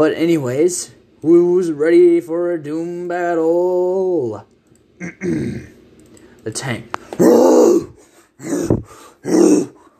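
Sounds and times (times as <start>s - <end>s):
speech: 0.0s - 5.7s, 6.4s - 9.7s
monster growling in deep guttural bursts: 7.2s - 9.8s.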